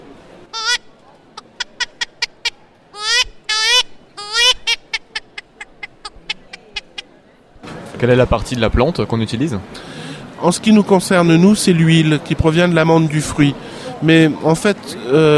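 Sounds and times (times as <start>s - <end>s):
duck quacking: 0.6s - 0.8s, 1.4s - 7.0s
speech: 8.0s - 15.3s.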